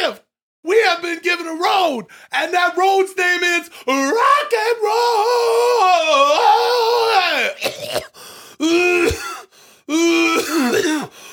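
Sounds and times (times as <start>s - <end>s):
speech: 1.0s - 8.0s, 9.9s - 11.1s
person coughing theatrically: 7.6s - 8.2s, 8.9s - 9.5s, 10.1s - 11.2s.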